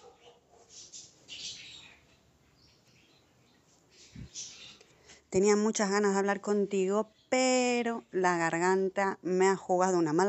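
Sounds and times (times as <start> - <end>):
small birds chirping: 0.0 - 8.2
speech: 5.3 - 10.2.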